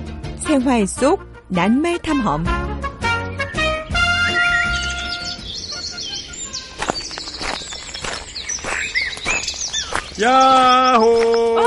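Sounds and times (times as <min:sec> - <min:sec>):
speech: 0:00.5 - 0:02.7, 0:10.2 - 0:11.6
birds chirping and trilling in a forest: 0:03.2 - 0:11.6.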